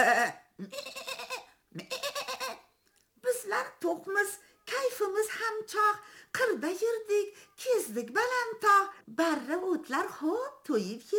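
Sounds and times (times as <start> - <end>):
speech: 0.0 - 0.9, 5.0 - 11.1
human voice imitating goats bleating: 0.0 - 2.6.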